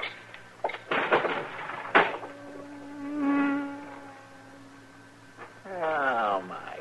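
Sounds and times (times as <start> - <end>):
stinging insect buzzing trapped in a room by a closed window: 1.4 - 6.7.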